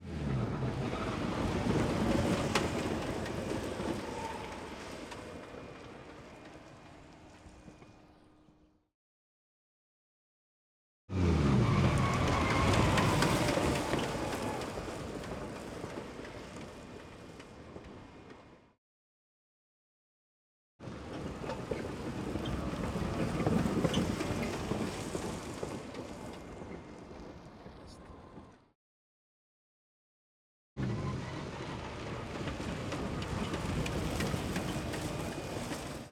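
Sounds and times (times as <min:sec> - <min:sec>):
tyres skidding on tarmac: 0:00.0 - 0:08.3, 0:11.1 - 0:18.6, 0:20.8 - 0:28.6, 0:30.8 - 0:36.0.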